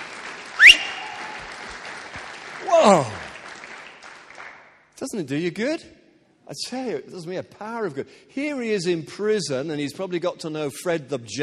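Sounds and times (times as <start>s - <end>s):
audience clapping in a large room: 0.0s - 4.8s
rising whistle: 0.6s - 1.4s
speech: 2.8s - 3.2s, 5.1s - 11.4s.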